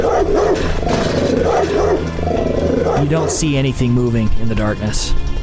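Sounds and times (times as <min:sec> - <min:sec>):
dog barking behind a gate: 0:00.0 - 0:03.1
speech: 0:03.0 - 0:05.3.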